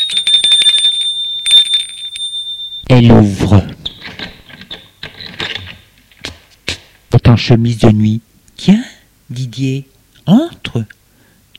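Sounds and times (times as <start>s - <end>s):
doorbell ringing at a front door with a buzzy electronic trill: 0.0s - 3.0s, 3.8s - 5.9s
speech: 2.9s - 3.7s, 7.4s - 11.0s.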